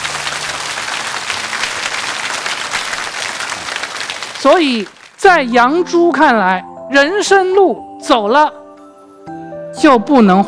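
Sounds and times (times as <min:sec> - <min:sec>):
audience applause: 0:00.0 - 0:05.2
speech: 0:04.4 - 0:08.6, 0:09.8 - 0:10.4.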